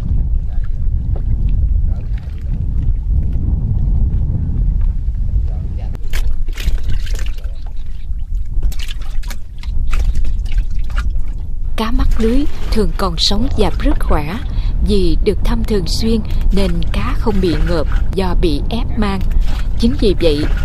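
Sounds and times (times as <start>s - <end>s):
water waves lapping against the side of a small wooden skiff on flooded countryside: 0.0s - 3.4s, 6.0s - 20.6s
wind buffeting on flooded countryside: 0.0s - 20.6s
water splashes, drips and trickles on flooded countryside: 6.0s - 14.7s
speech: 11.8s - 20.6s.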